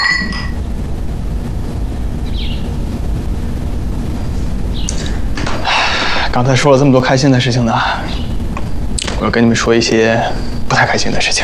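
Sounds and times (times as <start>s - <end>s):
glasses clinking in a toast: 0.0s - 0.6s
steady windy hiss: 0.0s - 11.4s
speech: 6.4s - 8.2s, 9.2s - 11.4s.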